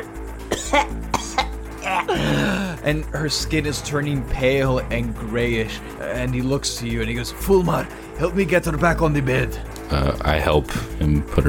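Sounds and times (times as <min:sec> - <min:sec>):
voice imitating wet gurgling coughs: 0:00.5 - 0:02.8
speech: 0:00.7 - 0:11.4.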